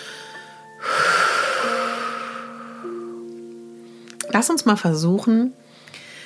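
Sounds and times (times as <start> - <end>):
deep breath in through the nose and out through the mouth as a breathing exercise: 0.0 - 3.2, 5.7 - 6.2
soft steady tone: 0.0 - 6.2
speech: 4.3 - 5.6.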